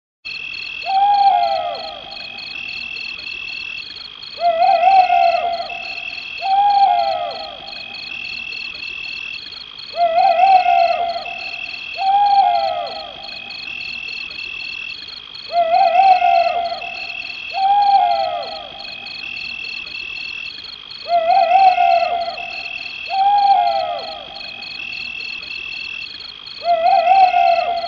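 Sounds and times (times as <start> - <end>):
owl hooting: 0.8 - 3.1, 4.4 - 8.6, 9.9 - 14.1, 15.5 - 19.6, 21.0 - 25.2, 26.6 - 27.8.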